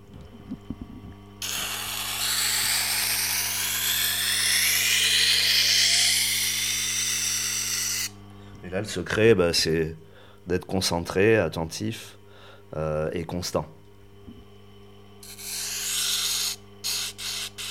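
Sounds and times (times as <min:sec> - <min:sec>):
motorized grinder humming: 0:01.4 - 0:08.3, 0:15.2 - 0:17.7
speech: 0:08.7 - 0:13.8.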